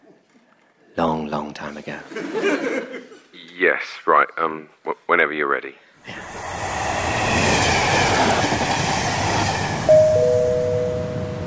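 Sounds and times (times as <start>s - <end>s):
speech: 1.0s - 6.6s
laughter: 2.1s - 3.4s
train rumbling into a station: 6.1s - 11.4s
train brakes squealing as it slows: 6.2s - 10.3s.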